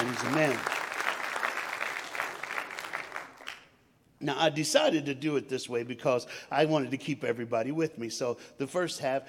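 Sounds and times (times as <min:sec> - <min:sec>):
crowd applauding: 0:00.0 - 0:03.7
speech: 0:00.2 - 0:00.8, 0:04.2 - 0:09.2.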